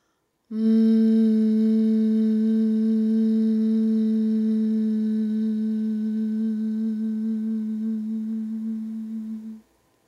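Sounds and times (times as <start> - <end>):
group of voices humming a sustained tone: 0.5 - 9.6.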